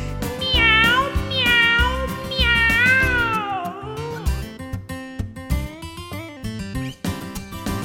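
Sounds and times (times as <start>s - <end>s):
bouncy backing music: 0.0s - 7.8s
cat meowing: 0.4s - 4.3s.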